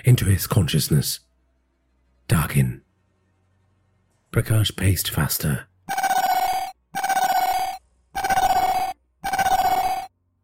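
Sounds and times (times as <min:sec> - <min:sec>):
speech: 0:00.1 - 0:01.3, 0:02.3 - 0:02.8, 0:04.3 - 0:06.0
phone alarm ringing: 0:05.9 - 0:10.1.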